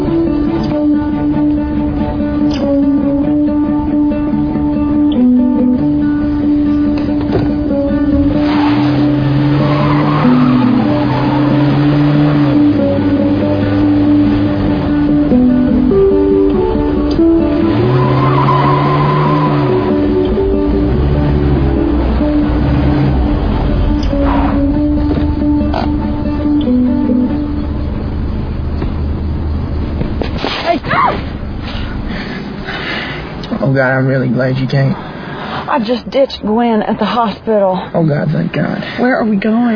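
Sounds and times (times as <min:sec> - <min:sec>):
car engine humming while parking: 0:00.0 - 0:39.7
car tires squealing and skidding: 0:06.7 - 0:36.4
speech: 0:34.4 - 0:35.0, 0:35.8 - 0:39.7.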